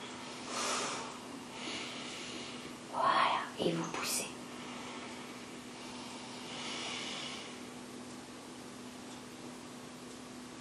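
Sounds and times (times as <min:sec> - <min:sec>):
faint steady hiss: 0:00.0 - 0:10.6
forceful nasal exhalations in a breathing exercise: 0:00.4 - 0:01.8
speech: 0:03.6 - 0:04.4.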